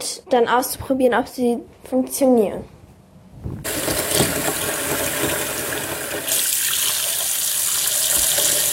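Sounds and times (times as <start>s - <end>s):
speech: 0.2s - 2.8s
water gushing from a tap into a bathroom sink: 3.7s - 8.7s.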